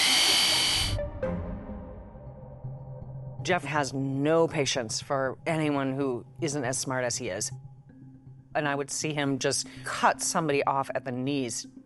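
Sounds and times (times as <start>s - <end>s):
high-pitched hand drill whirring: 0.0s - 1.0s
speech: 3.5s - 7.7s, 8.5s - 11.8s.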